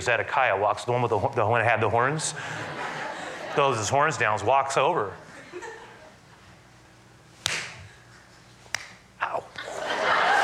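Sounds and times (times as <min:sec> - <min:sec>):
speech: 0:00.0 - 0:02.9, 0:03.6 - 0:05.7
laughter: 0:02.3 - 0:04.5, 0:05.2 - 0:06.2, 0:09.6 - 0:10.4
sharp slap to the face: 0:07.4 - 0:07.8, 0:08.7 - 0:09.0.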